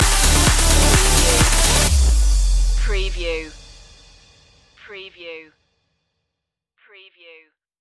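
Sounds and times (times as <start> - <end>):
club music stinger: 0.0 - 4.0.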